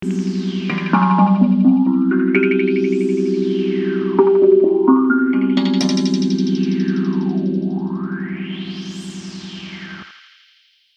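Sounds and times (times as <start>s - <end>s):
hapi drum in akebono scale with filter can effect: 0.0s - 7.7s.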